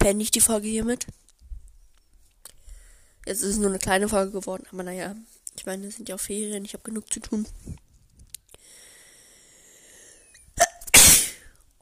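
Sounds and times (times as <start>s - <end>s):
speech: 0.0s - 1.2s, 3.3s - 7.8s
sharp inhale before a sneeze: 2.6s - 3.2s, 8.6s - 10.4s
person sneezing: 10.6s - 11.5s.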